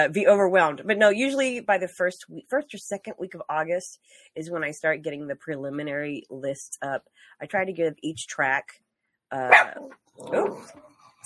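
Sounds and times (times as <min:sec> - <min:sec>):
speech: 0:00.0 - 0:10.9
dogs barking: 0:09.5 - 0:10.7.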